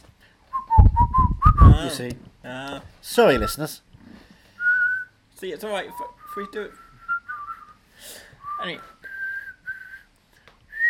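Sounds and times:
person whistling a short wavering phrase close to the microphone: 0.5 - 1.9, 4.6 - 5.1, 5.9 - 7.8, 8.4 - 10.1
breathy low rumbles of air hitting the microphone: 0.6 - 2.0
speech: 1.8 - 3.9, 5.4 - 6.8, 8.0 - 8.9.

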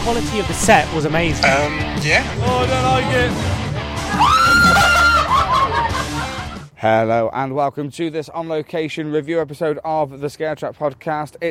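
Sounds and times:
speech: 0.0 - 5.0, 6.8 - 11.5
woman screaming loudly: 4.1 - 5.6
laughter: 4.1 - 6.7.

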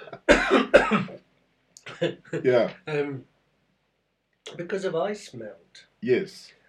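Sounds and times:
person coughing: 0.0 - 1.2
speech: 2.0 - 3.3, 4.6 - 6.6.

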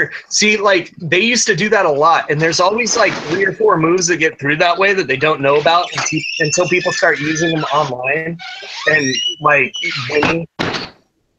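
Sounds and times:
speech: 0.0 - 10.7
door scraping open: 2.9 - 3.7, 5.4 - 11.0.

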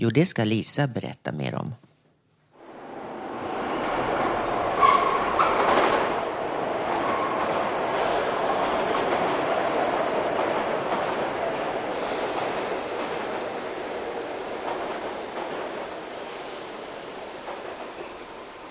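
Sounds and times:
speech: 0.0 - 1.9
metro train rattling through a tunnel: 2.6 - 18.6
brief metallic squeal of a metro train: 4.8 - 5.6.

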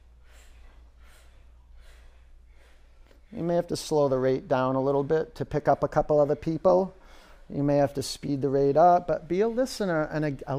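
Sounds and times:
several people breathing out together in soft breathy pulses: 0.0 - 3.4
speech: 3.3 - 10.5.

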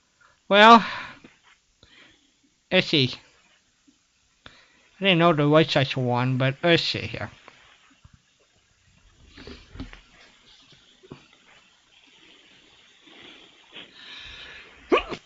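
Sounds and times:
speech: 0.5 - 1.0, 2.7 - 3.2, 5.0 - 7.4
person sneezing: 14.8 - 15.2.

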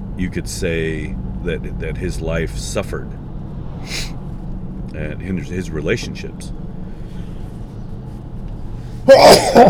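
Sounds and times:
speech: 0.2 - 4.2, 4.9 - 6.6, 9.1 - 9.6
human sneeze: 9.1 - 9.6.

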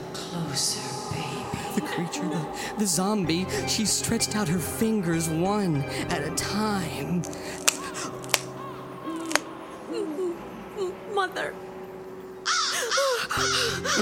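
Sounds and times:
low steady hum: 0.0 - 13.9
speech: 1.8 - 7.7
crow cawing: 7.4 - 9.8, 12.4 - 13.9.

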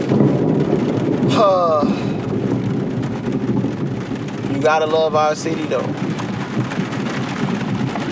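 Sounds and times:
heavy rain pouring during a rainstorm: 0.0 - 8.0
low rolling thunder during a rainstorm: 0.0 - 8.0
speech: 4.6 - 6.0.

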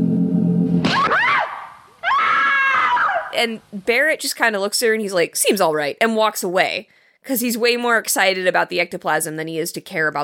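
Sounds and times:
woman in a trance screaming: 0.9 - 3.4
speech: 3.4 - 10.2.

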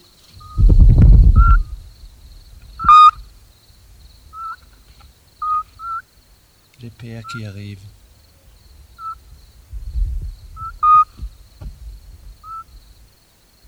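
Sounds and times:
mother scops owl in the nest giving whistled calls to her chicks: 0.2 - 1.8, 2.6 - 3.4, 4.3 - 6.1, 9.0 - 9.3, 10.6 - 11.2, 12.4 - 12.8
low rumbling thump: 0.6 - 1.9, 9.7 - 12.4
speech: 7.0 - 8.0.

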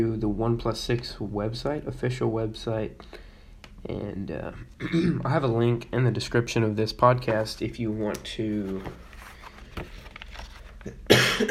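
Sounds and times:
speech: 0.0 - 9.1
person coughing: 4.7 - 5.3, 10.9 - 11.4.

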